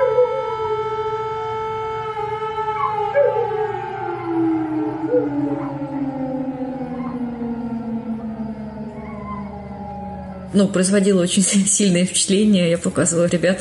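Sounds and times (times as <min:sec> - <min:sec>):
several dogs howling: 0:00.0 - 0:00.8, 0:02.5 - 0:10.6
long wailing air-raid siren: 0:00.0 - 0:13.5
speech: 0:10.5 - 0:13.5.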